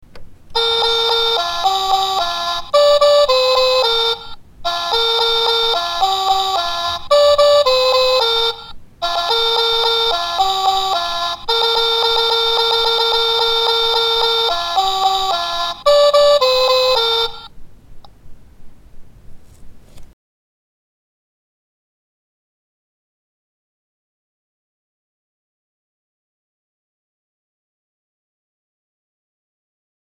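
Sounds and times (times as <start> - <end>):
baby toy playing a nursery rhyme: 0.6 - 17.5.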